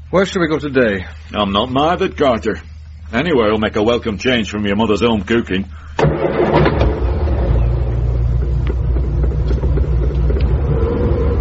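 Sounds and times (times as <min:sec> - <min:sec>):
speech: 0:00.1 - 0:06.4
sharp clunks: 0:06.0 - 0:10.6
old Ford Zodiac engine starting, revving and pulling away from a house: 0:06.0 - 0:11.3.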